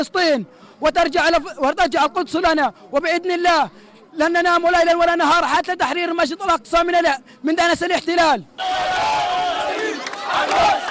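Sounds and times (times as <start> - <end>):
speech: 0.0 - 9.5, 10.3 - 10.9
crowd of protesters in Gaza shouting slogans and takbir cries: 8.5 - 10.9.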